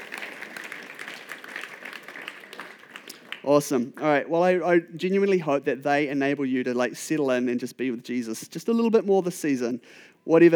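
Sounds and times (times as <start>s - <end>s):
room full of people applauding: 0.0s - 3.6s
speech: 3.4s - 10.5s.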